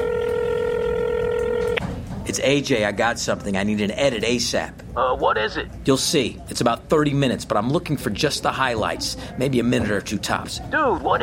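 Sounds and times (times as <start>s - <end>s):
steady electronic telephone line tone: 0.0s - 1.8s
speech: 2.3s - 11.2s.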